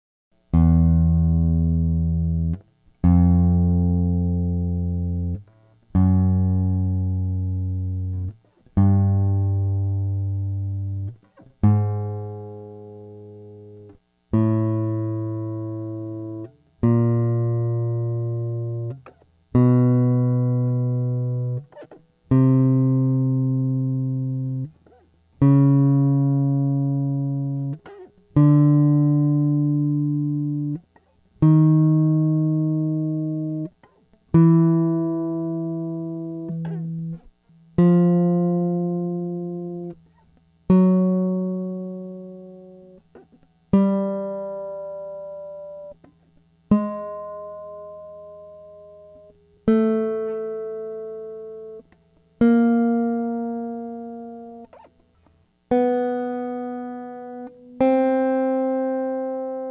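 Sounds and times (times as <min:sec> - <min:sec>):
Yamaha guitar with Fishman pickup playing a scale: 0:00.4 - 0:59.6.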